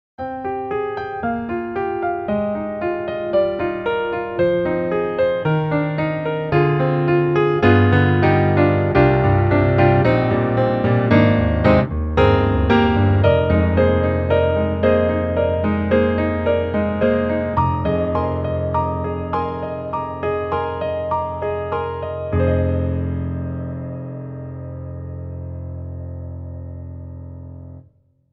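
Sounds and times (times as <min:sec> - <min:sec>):
ballad: 0:00.7 - 0:27.1.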